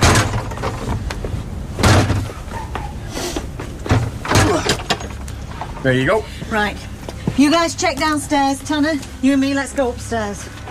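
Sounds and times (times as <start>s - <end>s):
house door being forced open with heavy blows: 0.0s - 0.8s, 1.8s - 2.3s, 3.9s - 5.2s
speech: 5.8s - 10.6s.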